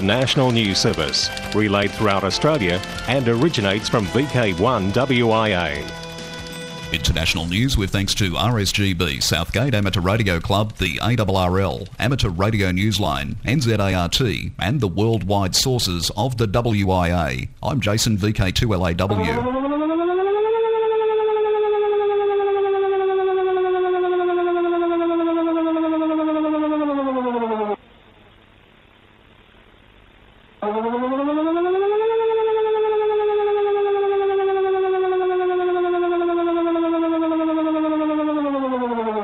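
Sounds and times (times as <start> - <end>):
speech: 0.0 - 6.0, 6.9 - 19.7
Danish nationwide civil defense warning siren in annual test: 0.0 - 12.0, 19.1 - 27.8, 30.6 - 39.2.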